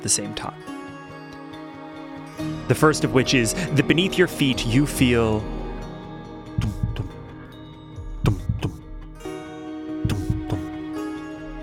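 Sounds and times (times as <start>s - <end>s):
speech: 0.0s - 0.8s, 2.4s - 5.6s
droning musical bed: 1.9s - 11.6s
heartbeat sound effect: 6.6s - 7.2s, 8.2s - 9.2s, 10.0s - 10.8s.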